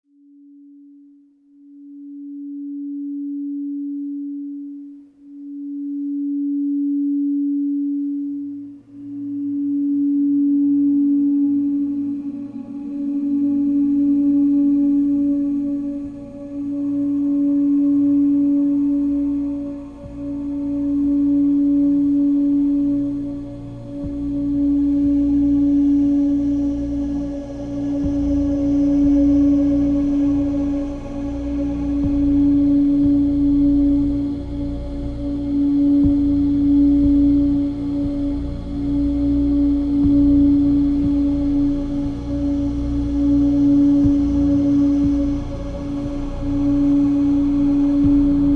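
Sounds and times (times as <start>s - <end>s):
285hz binaural beats: 0.2s - 48.5s.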